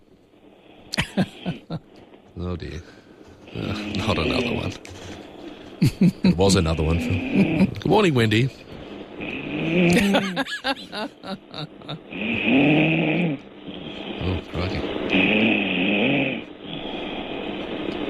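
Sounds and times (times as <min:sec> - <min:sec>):
laughter: 0:01.0 - 0:01.8, 0:05.8 - 0:06.5, 0:09.9 - 0:12.0
speech: 0:01.2 - 0:01.8, 0:02.5 - 0:03.0, 0:03.6 - 0:05.0, 0:05.8 - 0:08.7, 0:09.8 - 0:13.5
person snoring loudly over a phone line: 0:03.5 - 0:04.7, 0:06.2 - 0:07.9, 0:09.2 - 0:18.0.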